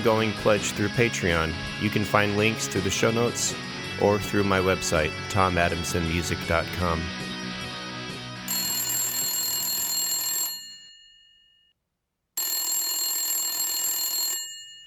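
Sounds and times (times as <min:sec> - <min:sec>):
speech: 0:00.0 - 0:07.3
90s-style telephone ringing: 0:08.5 - 0:11.7, 0:12.4 - 0:14.8.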